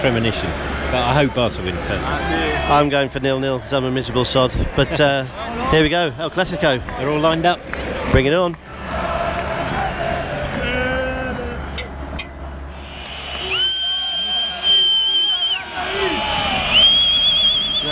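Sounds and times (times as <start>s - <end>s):
speech: 0.0s - 9.0s
football stadium crowd roaring: 0.0s - 17.9s
shrill sustained whistle-like tones: 12.6s - 17.9s.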